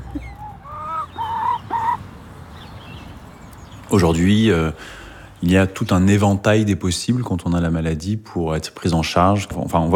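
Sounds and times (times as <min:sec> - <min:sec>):
hens clucking: 0:00.0 - 0:02.0
speech: 0:03.9 - 0:09.9.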